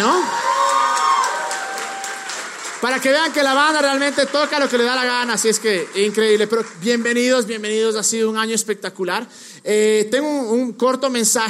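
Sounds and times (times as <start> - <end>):
crowd cheering and shouting for band: 0.0 - 7.1
crowd applauding for band: 0.0 - 8.1
speech: 2.8 - 11.4.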